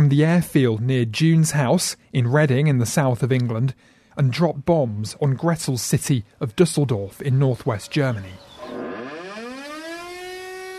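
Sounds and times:
speech: 0.1 - 8.5
wartime air raid siren wailing in Düsseldorf: 8.4 - 10.7.

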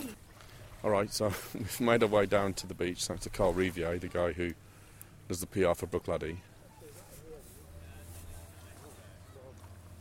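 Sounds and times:
lapping water: 0.0 - 5.2
motorboat droning across a small bay by a beach: 0.0 - 9.9
wind: 0.0 - 9.9
speech: 0.8 - 4.7, 5.3 - 6.5
faint voices murmuring: 1.2 - 9.9.

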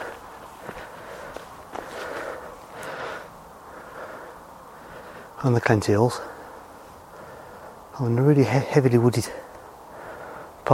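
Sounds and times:
footstep crunches on the ground: 0.0 - 3.2
person panting after walking up a steep hill: 0.0 - 5.4, 6.2 - 7.9, 9.8 - 10.6
speech: 5.4 - 6.4, 8.0 - 9.5.

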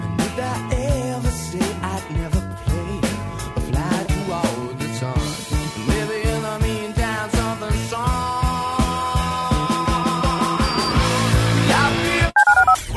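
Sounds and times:
musical backing: 0.0 - 12.7
telephone keypad dialing tones: 12.4 - 12.8.

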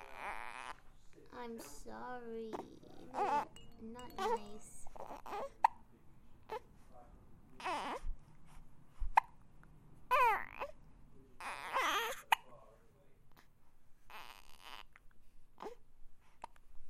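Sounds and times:
baby making soft fussy vocal sounds and whimpers: 0.0 - 0.8, 2.5 - 5.6, 7.6 - 8.1, 11.4 - 12.3, 14.1 - 15.0
speech: 1.4 - 5.5.

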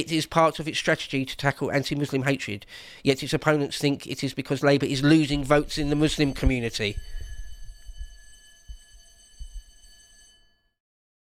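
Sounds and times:
speech: 0.0 - 7.2
fire alarm steady electronic tone: 5.0 - 10.8
dull low thumps: 5.3 - 9.7.

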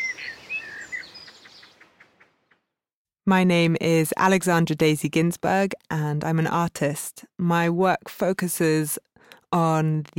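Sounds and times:
birds singing bright whistled notes outdoors: 0.0 - 1.9
birds chirping quickly outdoors: 0.0 - 2.7
speech: 3.3 - 10.1.

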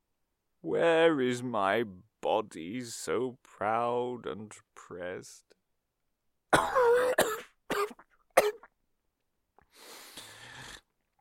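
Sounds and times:
speech: 0.6 - 5.6, 6.5 - 7.2
person clearing throat: 6.6 - 8.7
person coughing: 6.6 - 8.7.

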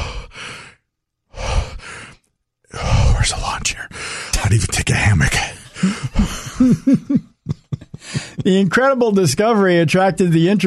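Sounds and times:
heavy hoarse breathing as an alien creature: 0.0 - 4.5, 5.3 - 6.9, 7.9 - 8.5
speech: 4.5 - 6.0, 6.6 - 7.3, 8.4 - 10.6
laughter: 5.8 - 9.1.

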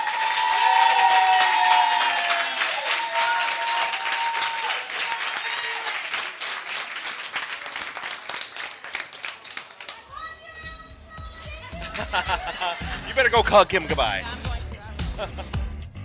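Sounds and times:
excited whoops and high-pitched cheering voices: 0.0 - 6.0
crowd applauding: 0.0 - 10.8, 11.5 - 14.6
laughter: 11.6 - 15.9
speech: 13.4 - 14.4, 15.2 - 15.5.

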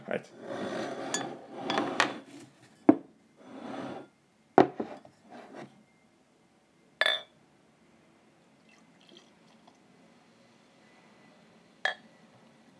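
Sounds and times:
speech: 0.1 - 0.8
wooden chair scraping and creaking as it is shifted and sat on: 0.4 - 2.8, 3.4 - 4.1.

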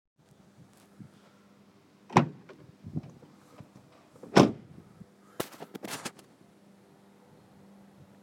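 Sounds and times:
car door: 2.1 - 4.6.

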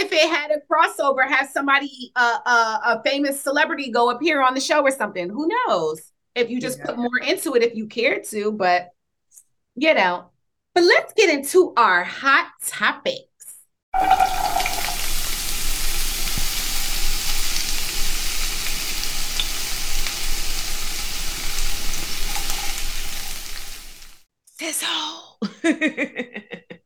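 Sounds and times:
speech: 0.2 - 9.0, 9.8 - 13.3, 14.0 - 14.5, 24.6 - 26.7
loud steady sizzling: 14.0 - 24.3
laughter: 25.4 - 26.8.

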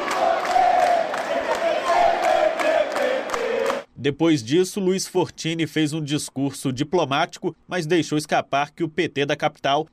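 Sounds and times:
large crowd of party supporters shouting and cheering in relief: 0.0 - 3.9
speech: 4.0 - 9.9.

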